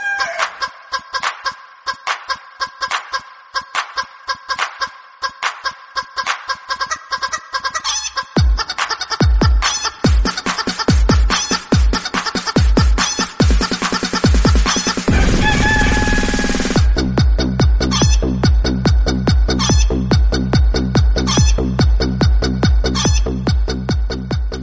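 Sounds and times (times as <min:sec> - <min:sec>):
funny rooster background music tone: 0:00.2 - 0:24.6.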